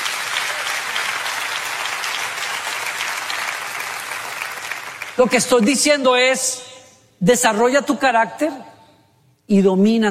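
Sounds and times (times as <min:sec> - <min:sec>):
audience applause from a sizable crowd: 0:00.0 - 0:05.2
speech: 0:05.2 - 0:08.7, 0:09.5 - 0:10.1.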